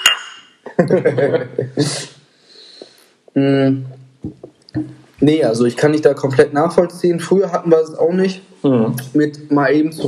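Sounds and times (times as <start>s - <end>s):
beer bottles clinking together in a toast: 0.0s - 0.6s
laughter: 0.7s - 2.1s
speech: 0.8s - 2.2s, 3.4s - 10.0s.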